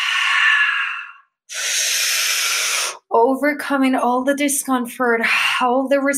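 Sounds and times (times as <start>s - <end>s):
forceful breathing during breath work exercise: 0.0s - 3.1s
speech: 3.2s - 6.1s.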